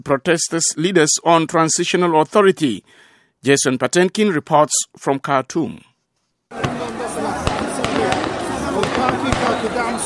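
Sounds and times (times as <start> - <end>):
speech: 0.0 - 5.9
crowd noise in a busy outdoor street: 6.5 - 10.0
sharp gunshots in a busy outdoor city street: 6.5 - 10.0
voices: 6.5 - 10.0.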